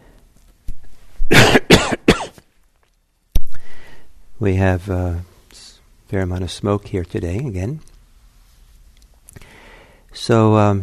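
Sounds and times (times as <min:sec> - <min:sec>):
person coughing harshly: 0:01.3 - 0:02.4
speech: 0:04.4 - 0:05.3, 0:06.1 - 0:07.9, 0:10.2 - 0:10.8.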